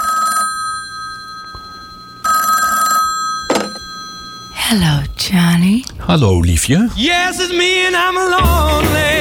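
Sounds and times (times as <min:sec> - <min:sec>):
telephone ringing with bright electronic trill: 0:00.0 - 0:05.2
speech: 0:04.7 - 0:09.1.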